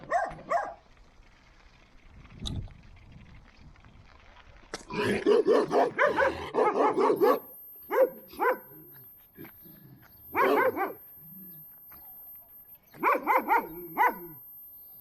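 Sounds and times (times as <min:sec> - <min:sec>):
untrained dog barking: 0:00.0 - 0:00.8, 0:05.1 - 0:08.8, 0:10.3 - 0:11.0, 0:13.0 - 0:14.4.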